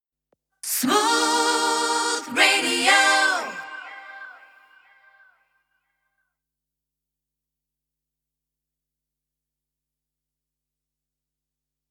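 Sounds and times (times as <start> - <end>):
a cappella sung news jingles in C minor: 0.6 - 5.4.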